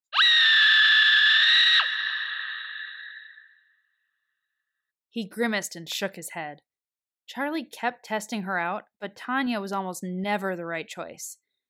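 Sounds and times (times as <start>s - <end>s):
woman's high-pitched screech played from a laugh machine: 0.1s - 3.6s
speech: 5.2s - 6.7s, 7.3s - 11.4s.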